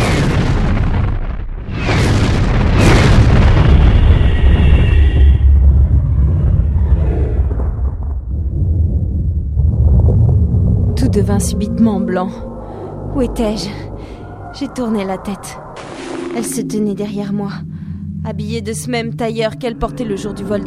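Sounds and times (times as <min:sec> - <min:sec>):
crackling bursts: 0:00.0 - 0:11.2, 0:15.0 - 0:18.4
massive cinematic explosion depicting the Big Bang: 0:00.0 - 0:20.6
loud sustained deep low rumble: 0:00.6 - 0:20.6
speech: 0:11.2 - 0:12.5, 0:13.2 - 0:13.9, 0:14.6 - 0:15.6, 0:16.4 - 0:20.6.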